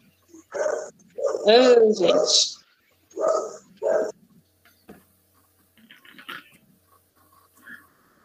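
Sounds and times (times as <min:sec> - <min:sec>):
dog barking loudly: 0:00.5 - 0:02.4, 0:03.2 - 0:04.2
speech: 0:01.5 - 0:02.5.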